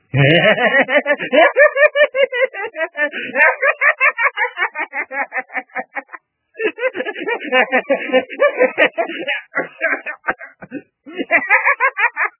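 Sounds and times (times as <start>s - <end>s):
person laughing maniacally: 0.1s - 12.3s.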